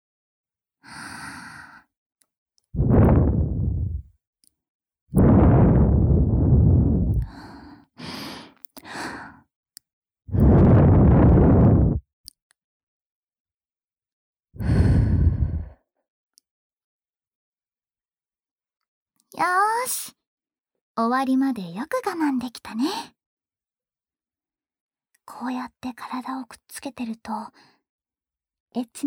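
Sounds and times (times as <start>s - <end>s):
breath blown softly at the listener's ear: 2.8s - 4.0s, 5.2s - 8.4s, 10.3s - 12.0s, 14.6s - 15.8s
speech: 19.4s - 20.2s, 21.0s - 23.2s, 25.3s - 27.7s, 28.7s - 29.0s.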